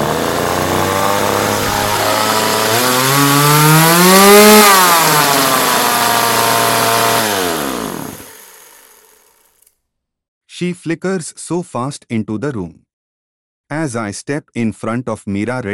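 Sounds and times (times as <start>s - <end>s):
chainsaw arm blades engine revving: 0.0s - 9.7s
speech: 10.6s - 12.8s, 13.7s - 15.7s.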